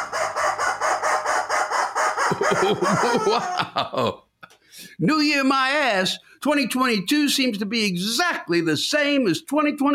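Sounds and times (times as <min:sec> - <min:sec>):
rubber chicken squeak toy squawking: 0:00.0 - 0:03.6
laughter: 0:02.3 - 0:04.2
speech: 0:02.4 - 0:09.9.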